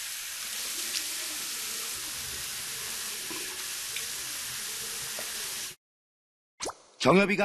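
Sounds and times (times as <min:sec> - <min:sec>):
water running from a sink tap while someone washes their face: 0:00.0 - 0:05.8.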